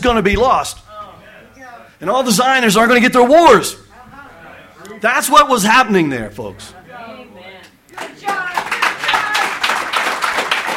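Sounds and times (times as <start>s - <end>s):
speech: 0.0s - 0.9s, 2.0s - 3.8s, 5.0s - 8.4s
room full of people clapping: 7.9s - 10.7s.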